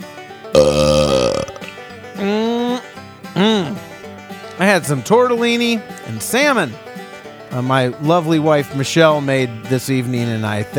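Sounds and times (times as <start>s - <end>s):
wet belches: 0.6s - 2.9s
speech: 4.8s - 6.9s, 7.6s - 10.7s.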